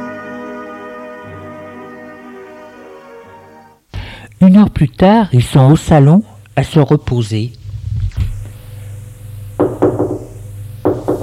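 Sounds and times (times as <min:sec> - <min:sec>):
low steady hum: 0:03.8 - 0:11.2
speech: 0:04.4 - 0:07.6
sharp solid knocking on a door: 0:09.6 - 0:11.2.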